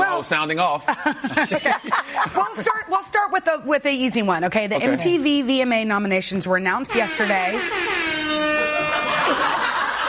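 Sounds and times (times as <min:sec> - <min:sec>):
speech: 0:00.2 - 0:08.5
laughter: 0:00.8 - 0:02.8, 0:08.8 - 0:10.0
air horn sound effect played by a studio audio engineer: 0:06.9 - 0:09.7.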